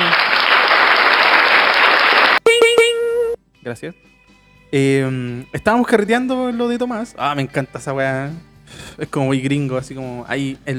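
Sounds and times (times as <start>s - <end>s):
loud dense applause: 0.0s - 2.4s
bright harmonic electronic tones: 2.4s - 3.4s
speech: 3.7s - 10.7s.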